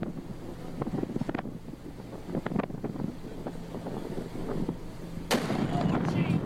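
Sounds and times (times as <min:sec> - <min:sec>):
rumbling: 0:00.0 - 0:06.4
wind buffeting an outdoor microphone: 0:00.0 - 0:06.4
sharp blast from an explosion's shock wave: 0:05.3 - 0:06.4.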